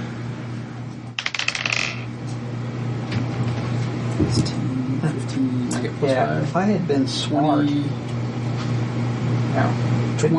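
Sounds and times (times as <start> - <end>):
low steady room hum: 0.0 - 10.3
damage dice for a tabletop game rolling on a hard table: 1.2 - 2.1
speech: 4.3 - 8.1, 9.6 - 10.3.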